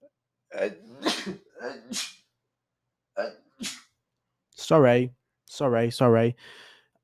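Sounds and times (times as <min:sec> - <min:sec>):
speech: 0:00.6 - 0:02.1, 0:04.7 - 0:07.0
person sneezing: 0:00.6 - 0:02.2, 0:03.2 - 0:03.9.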